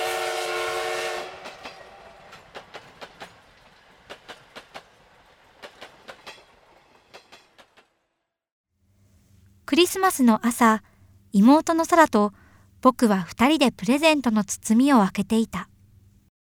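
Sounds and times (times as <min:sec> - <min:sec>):
loud brassy train whistle blasting: 0:00.0 - 0:02.5
clickety-clack of train wheels over rail joints: 0:01.3 - 0:08.1
speech: 0:09.7 - 0:15.7.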